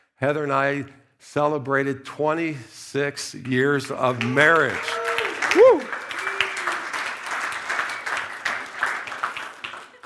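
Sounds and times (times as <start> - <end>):
speech: 0.2 - 6.0
audience applauding: 4.0 - 10.0
cheers from audience: 4.1 - 10.0.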